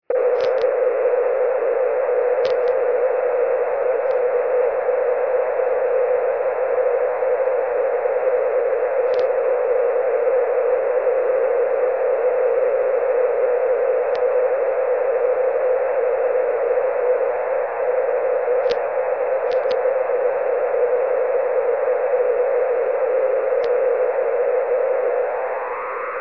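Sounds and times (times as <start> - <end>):
plasma TV interference on 160m radio band: 0.1 - 26.1.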